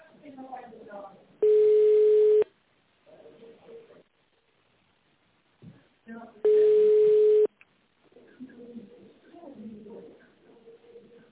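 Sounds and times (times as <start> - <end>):
telephone ringing tone while a company phone line transfers a call to an extension: 1.4 - 2.4, 6.5 - 7.5.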